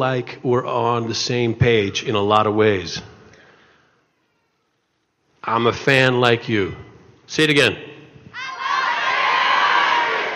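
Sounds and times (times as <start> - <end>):
speech: 0.0 - 3.1, 5.5 - 7.9
large convention audience cheering: 8.4 - 10.3.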